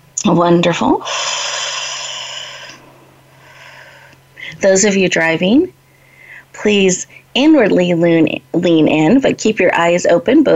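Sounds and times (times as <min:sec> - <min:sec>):
low constant hum: 0:00.0 - 0:09.9
speech: 0:00.2 - 0:01.4, 0:04.6 - 0:05.8, 0:06.5 - 0:10.5
deep breath during guided breathing: 0:01.0 - 0:04.6, 0:05.8 - 0:06.5.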